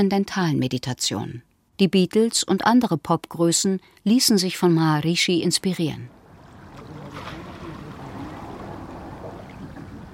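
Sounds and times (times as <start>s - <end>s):
speech: 0.0s - 6.2s
soft wind beside a lake on a sunny day: 6.0s - 10.1s
gentle lapping water of a lake: 6.1s - 10.1s
faint murmurs: 6.4s - 10.1s.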